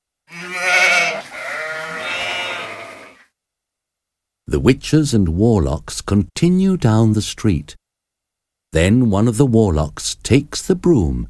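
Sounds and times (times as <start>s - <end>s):
sheep bleating while running in a field: 0.3s - 3.3s
speech: 4.5s - 7.8s, 8.7s - 11.2s.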